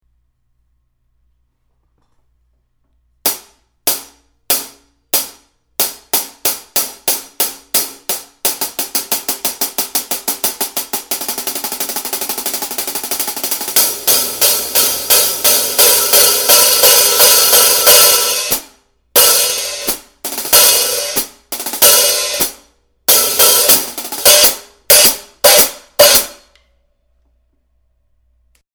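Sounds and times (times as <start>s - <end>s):
14-inch funk hi-hat cymbal: 3.3s - 26.6s.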